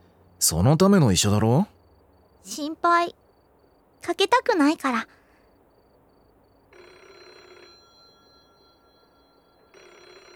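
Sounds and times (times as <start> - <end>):
speech: 0.4 - 1.8, 2.4 - 3.2, 4.0 - 5.2
telephone ringing: 6.5 - 10.3.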